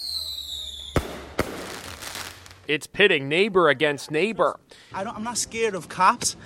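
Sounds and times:
faint firework whistling tone: 0:00.0 - 0:01.5
illegal fireworks bangs in New York: 0:00.0 - 0:02.7
speech: 0:02.7 - 0:06.4.

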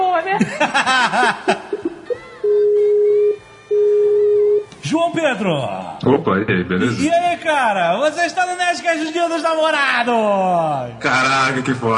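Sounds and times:
speech: 0:00.2 - 0:01.6, 0:05.4 - 0:11.9
laughter: 0:00.3 - 0:02.4
Skype call ringing tone on the caller's side: 0:02.4 - 0:04.7.

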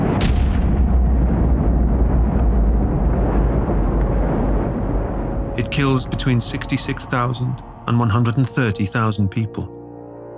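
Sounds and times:
atomic bomb explosion: 0:00.0 - 0:07.0
heavy low rumbling roar of atomic bomb explosion: 0:00.0 - 0:07.9
speech: 0:05.7 - 0:09.8.

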